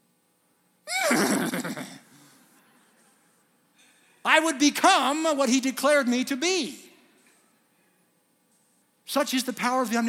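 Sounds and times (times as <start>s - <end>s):
horse whinnying: 0.9s - 1.7s
speech: 4.4s - 6.8s, 9.2s - 10.0s.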